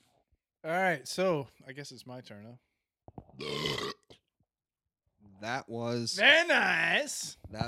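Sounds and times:
speech: 0.6s - 2.7s, 3.4s - 4.0s, 5.4s - 7.6s
loud belch from someone drinking beer: 3.4s - 4.2s.

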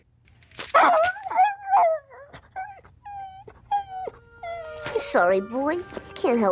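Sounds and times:
dog yelping sharply: 0.7s - 5.0s
speech: 5.1s - 6.4s.

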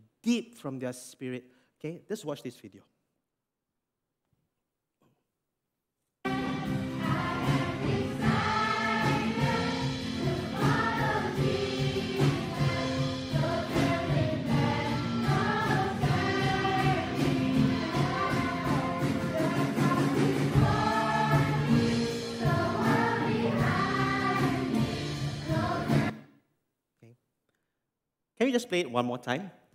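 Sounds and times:
speech: 0.2s - 2.9s, 28.4s - 29.7s
group of children singing a simple worship song: 6.3s - 26.2s
rhythmic accompaniment: 6.3s - 26.2s.

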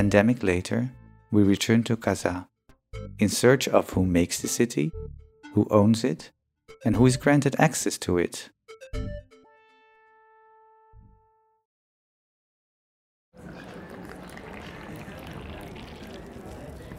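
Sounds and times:
speech: 0.0s - 9.2s
Moroccan mint tea pouring on a rooftop terrace in Casablanca: 13.4s - 16.9s.

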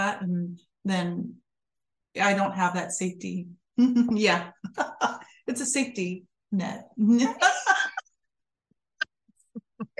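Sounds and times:
speech: 0.1s - 1.4s, 2.1s - 7.9s
laughter: 7.2s - 8.0s
person coughing: 7.4s - 8.0s
throat sounds: 9.5s - 9.9s.

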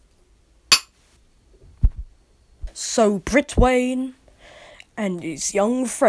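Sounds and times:
glasses clinking in a toast: 0.7s - 0.9s
speech: 2.9s - 4.2s, 5.0s - 6.0s.

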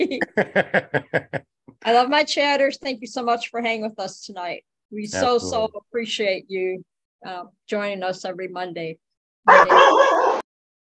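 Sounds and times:
laughter: 0.0s - 1.4s
speech: 0.0s - 10.3s
dog yelping and barking: 9.5s - 10.5s.

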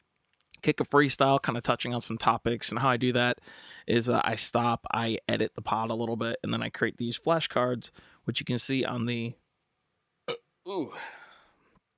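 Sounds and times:
speech: 0.6s - 9.4s, 10.6s - 11.2s
wet gurgly burp: 10.3s - 10.9s.

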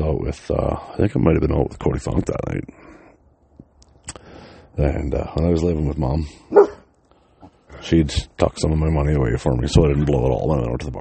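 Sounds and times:
speech: 0.2s - 3.0s, 4.8s - 6.8s, 7.7s - 11.0s
dog barking: 6.5s - 6.9s.

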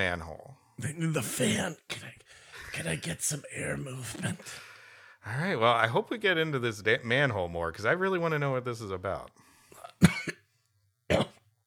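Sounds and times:
speech: 0.0s - 2.2s, 2.8s - 9.4s, 11.1s - 11.3s
person coughing and clearing throat from mucus: 9.8s - 10.4s, 11.1s - 11.4s.

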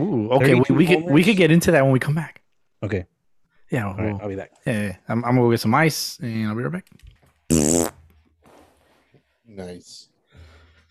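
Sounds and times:
speech: 0.3s - 3.1s, 3.7s - 7.9s, 9.5s - 10.1s
person farting directly into the microphone: 7.5s - 8.2s.

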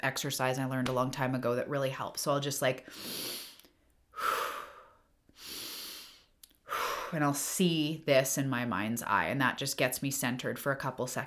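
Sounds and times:
speech: 0.0s - 3.4s, 7.1s - 11.2s
deep breathing exercise inhale and exhale: 2.8s - 7.2s.

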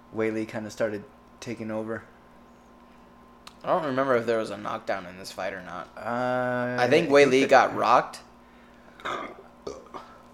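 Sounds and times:
speech: 0.1s - 2.2s, 3.6s - 8.3s
loud burp with shorter lighter belches: 9.0s - 10.2s.

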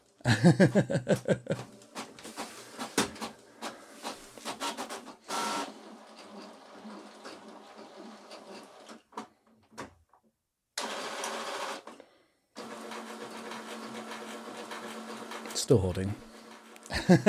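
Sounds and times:
speech: 0.2s - 1.7s, 15.7s - 16.3s, 17.1s - 17.2s
laughter: 0.3s - 1.6s, 16.9s - 17.2s
printer printing with whirring feed motors: 1.5s - 9.0s, 10.8s - 11.9s, 12.6s - 17.2s.

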